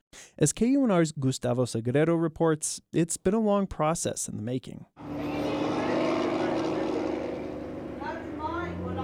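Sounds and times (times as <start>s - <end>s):
speech: 0.1s - 5.4s
semi-trucks packed with food and household goods roaring past on main road: 5.0s - 9.0s.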